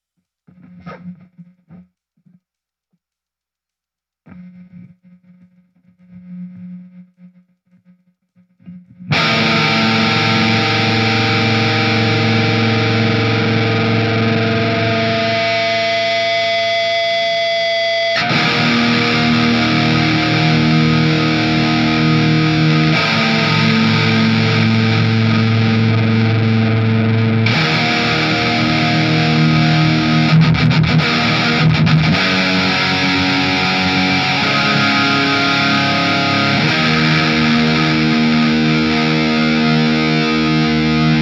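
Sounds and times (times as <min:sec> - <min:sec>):
right guitar feedback: 0:08.6 - 0:41.2.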